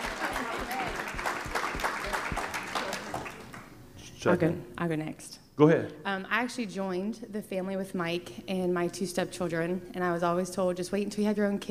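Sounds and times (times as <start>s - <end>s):
audience clapping: 0.0s - 3.8s
speech: 4.2s - 11.6s.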